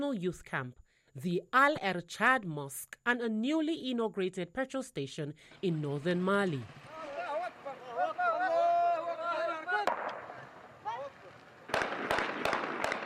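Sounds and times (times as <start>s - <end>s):
speech: 0.0s - 6.8s
armed fighters shouting and chanting: 6.8s - 11.4s
gunshots fired into the air by armed fighters celebrating a city takeover: 9.8s - 13.0s.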